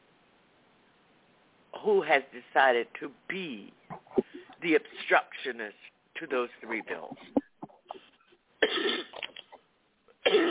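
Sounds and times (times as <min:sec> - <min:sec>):
speech: 0:01.8 - 0:07.4
person coughing: 0:08.6 - 0:09.2, 0:10.2 - 0:10.4.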